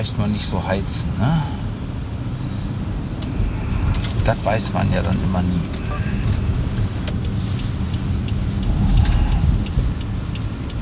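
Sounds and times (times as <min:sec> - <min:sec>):
speech: 0:00.0 - 0:01.6, 0:04.2 - 0:06.1
tractor gritting vehicle with grit-spreader hopper driving past: 0:00.9 - 0:10.8
faint ticking: 0:06.5 - 0:10.8.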